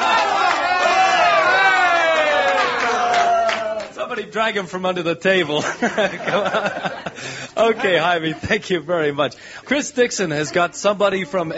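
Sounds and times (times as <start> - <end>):
people whooping: 0.0 - 4.0
audience applauding and cheering: 0.0 - 4.4
speech: 4.2 - 11.5
laughter: 5.4 - 8.5.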